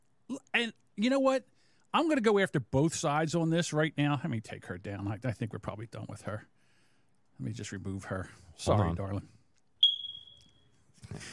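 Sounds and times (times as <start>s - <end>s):
speech: 0.6s - 6.6s, 7.4s - 9.4s, 11.1s - 11.3s
smoke detector low-battery chirp: 9.8s - 10.7s.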